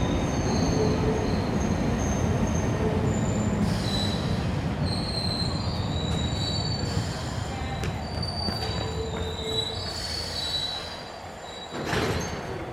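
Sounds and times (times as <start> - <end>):
train rolling in with a low rumble: 0.0 - 12.7
high piercing metal train brake squeals: 3.1 - 7.0, 7.8 - 12.5.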